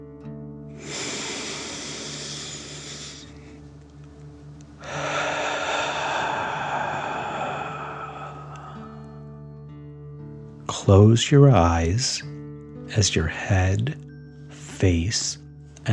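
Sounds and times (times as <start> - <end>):
slow deep breath in and out during bedtime relaxation: 0.7 - 3.6, 4.8 - 9.5
speech: 10.8 - 14.1, 14.8 - 15.9.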